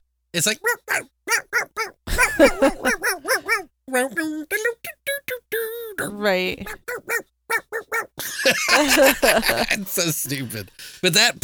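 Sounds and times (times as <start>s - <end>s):
speech: 0.4s - 2.8s, 3.9s - 4.9s, 6.2s - 6.9s, 8.5s - 11.4s
dog barking: 0.6s - 3.7s, 6.6s - 8.2s
laughter: 2.1s - 3.6s, 8.1s - 10.8s.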